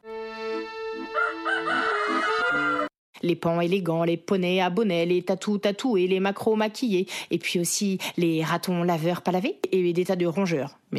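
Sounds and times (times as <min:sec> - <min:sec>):
rooster crowing: 0:01.0 - 0:02.9
speech: 0:03.2 - 0:10.9.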